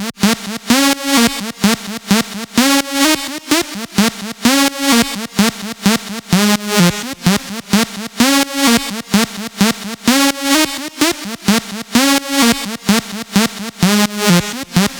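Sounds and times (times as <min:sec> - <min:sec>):
128 BPM sidechained lead loop in A sharp: 0:00.0 - 0:14.9.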